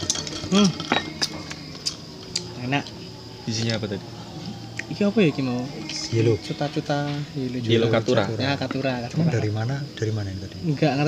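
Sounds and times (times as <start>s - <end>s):
spoon stirring Vietnamese coffee in a glass: 0.0s - 2.0s
speech: 0.5s - 1.3s, 2.7s - 4.2s, 4.9s - 11.0s.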